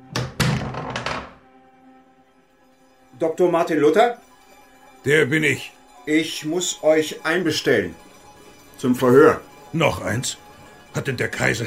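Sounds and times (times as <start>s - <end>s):
wooden door being opened: 0.1s - 1.4s
speech: 3.2s - 4.2s, 5.0s - 8.1s, 8.8s - 11.6s.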